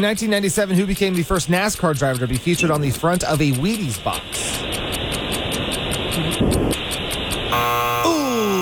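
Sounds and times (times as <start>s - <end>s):
speech: 0.0s - 4.6s
steady hissing pulsing noise: 0.0s - 8.0s
trivia quiz game show buzzer: 7.5s - 8.6s.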